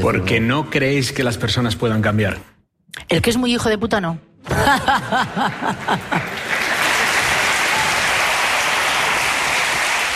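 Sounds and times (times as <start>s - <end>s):
speech: 0.0s - 6.4s
laughter: 4.4s - 7.0s
dense steady crowd applause: 5.0s - 10.1s.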